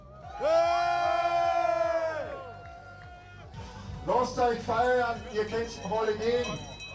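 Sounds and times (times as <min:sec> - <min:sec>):
audience cheering and whooping: 0:00.0 - 0:04.6
speech: 0:04.2 - 0:06.7.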